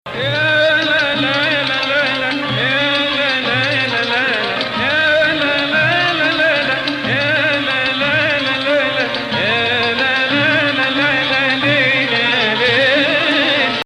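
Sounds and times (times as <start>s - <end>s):
Arabic maqam music in Sikah Jadaka Rast: 0.0s - 13.8s.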